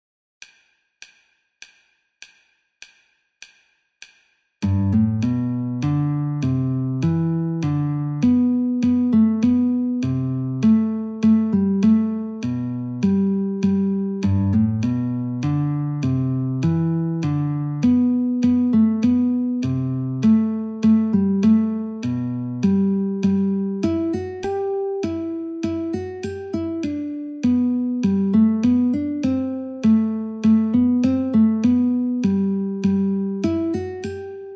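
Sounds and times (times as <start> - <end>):
polka guitar: 4.6 - 34.5.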